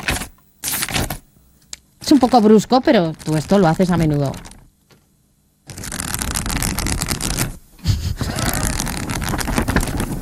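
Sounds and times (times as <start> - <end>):
pages riffling: 0.0 - 1.2, 3.2 - 5.1, 5.7 - 7.6, 8.2 - 10.1
speech: 2.1 - 4.5.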